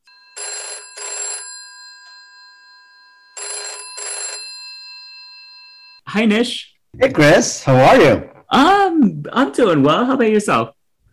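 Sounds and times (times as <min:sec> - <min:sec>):
outgoing phone call ringing: 0:00.0 - 0:06.0
speech: 0:06.1 - 0:10.8.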